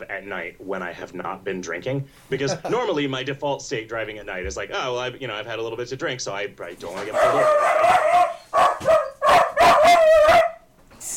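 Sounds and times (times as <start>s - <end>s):
speech: 0.2s - 8.9s
dog barking: 7.1s - 10.6s.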